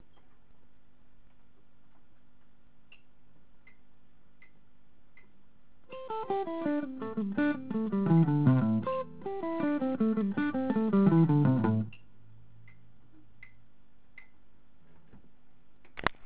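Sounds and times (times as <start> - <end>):
alternate picking: 5.9 - 12.9.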